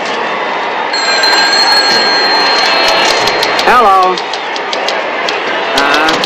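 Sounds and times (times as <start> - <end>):
loud noise: 0.0 - 6.2
telephone ringing: 1.0 - 4.2.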